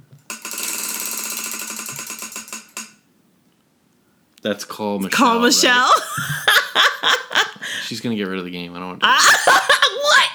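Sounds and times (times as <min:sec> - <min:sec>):
prize wheel clicker ticking as the wheel spins in a game: 0:00.2 - 0:03.0
speech: 0:04.4 - 0:10.2
laughter: 0:05.1 - 0:07.8, 0:09.0 - 0:10.3.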